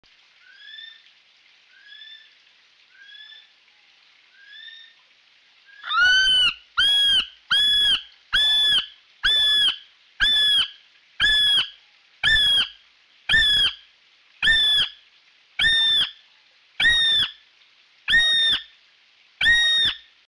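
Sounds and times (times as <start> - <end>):
kiwi calling: 5.7 - 12.7, 13.3 - 13.8, 14.4 - 15.0, 15.6 - 16.2, 16.8 - 17.4, 18.1 - 18.7, 19.4 - 20.0.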